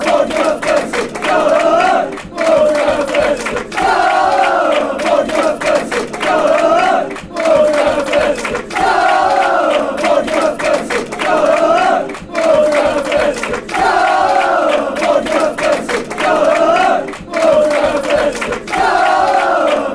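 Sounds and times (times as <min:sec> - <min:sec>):
football chant: 0:00.0 - 0:19.9.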